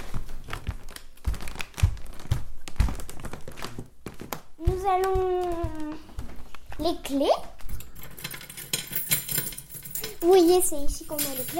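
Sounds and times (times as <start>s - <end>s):
wooden floorboards creaking and thumping underfoot in a home: 0.0s - 7.9s
speech: 4.8s - 5.8s, 6.8s - 7.5s, 10.2s - 11.5s.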